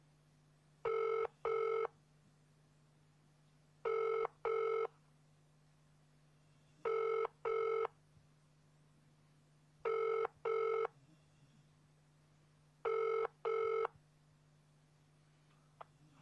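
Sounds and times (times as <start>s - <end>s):
telephone call to the police line ringing unanswered with double-burst pattern: 0.8s - 1.9s, 3.8s - 4.9s, 6.8s - 7.9s, 9.8s - 10.9s, 12.8s - 13.9s.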